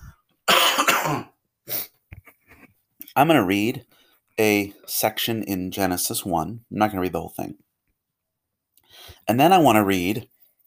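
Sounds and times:
loud harsh cough: 0.5 - 1.4
speech: 1.1 - 1.3, 3.2 - 7.6, 9.0 - 10.3.

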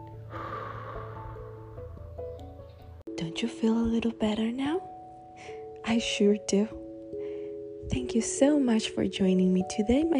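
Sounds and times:
long slow breath in and out: 0.2 - 2.0, 7.2 - 7.7
speech: 3.2 - 6.8, 7.9 - 10.1.

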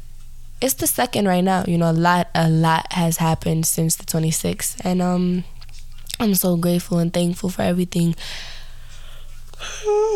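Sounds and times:
speech: 0.6 - 5.5, 6.2 - 8.6, 9.6 - 10.1
person yawning: 9.6 - 10.1.

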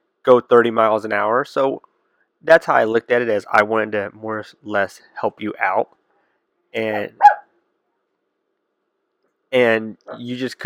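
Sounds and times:
speech: 0.2 - 6.0, 6.7 - 7.2, 9.5 - 10.6
dog barking: 7.1 - 7.5.

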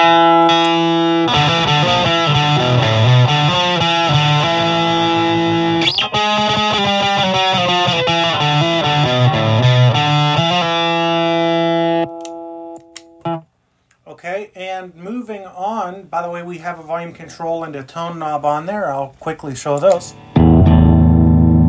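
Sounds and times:
electric guitar through a pedal with boost and plexi drive: 0.0 - 13.5, 20.1 - 21.6
speech: 16.2 - 20.3.

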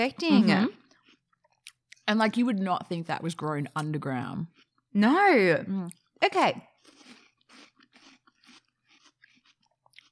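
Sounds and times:
speech: 0.0 - 0.8, 2.1 - 6.7
crunchy food being chewed: 0.7 - 2.2, 3.6 - 4.9, 5.9 - 10.0.

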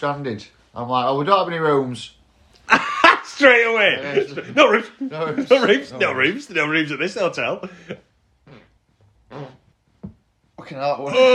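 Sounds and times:
speech: 0.0 - 2.8, 3.4 - 8.1, 10.6 - 11.3
laughter: 2.7 - 6.5
fart: 8.4 - 10.2.

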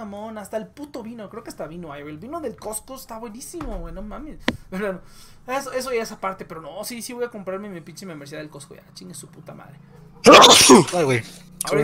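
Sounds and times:
speech: 0.0 - 11.8
person sneezing: 10.3 - 11.0.

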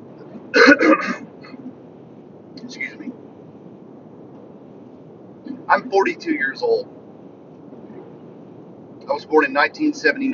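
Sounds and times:
faint low murmur: 0.0 - 10.3
person clearing throat after drinking cold water: 0.5 - 1.6
speech: 5.7 - 7.0, 9.1 - 10.3.

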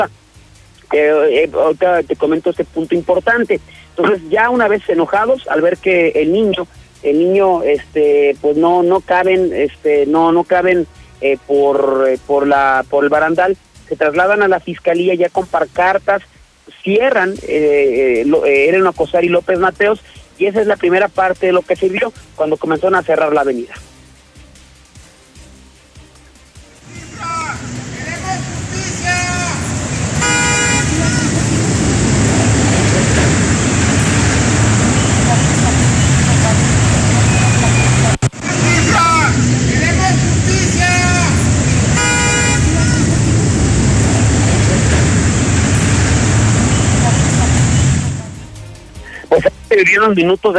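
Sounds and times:
speech: 0.0 - 0.2, 0.9 - 23.9, 49.4 - 50.5
car horns honking in a traffic jam after protesters closed an avenue: 26.8 - 48.4
steady roar of engines in a traffic jam: 26.8 - 48.5.

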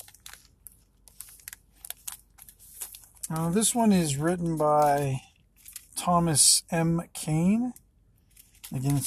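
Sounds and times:
plastic bag crinkling as a game book is slid out: 0.0 - 6.0
speech: 3.3 - 5.3, 6.0 - 7.8, 8.7 - 9.0.

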